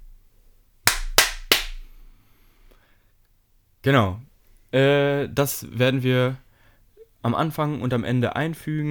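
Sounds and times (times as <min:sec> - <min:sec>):
start signal of sharp loud cracks for a run: 0:00.9 - 0:01.8
speech: 0:03.8 - 0:06.4, 0:07.2 - 0:08.8.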